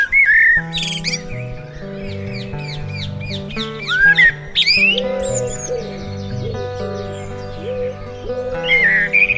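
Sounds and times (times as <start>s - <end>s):
birds chirping and singing: 0.0s - 9.3s
steady lower cooing: 3.2s - 9.3s.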